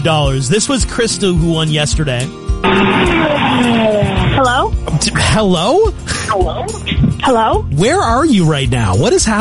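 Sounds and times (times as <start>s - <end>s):
speech: 0.0s - 9.3s
vacuum cleaner running inside a car: 2.6s - 4.4s.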